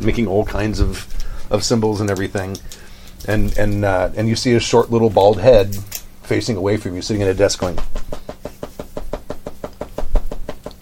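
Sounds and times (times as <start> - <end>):
speech: 0.0 - 8.4
rapid hollow knocking on a door: 7.8 - 10.7.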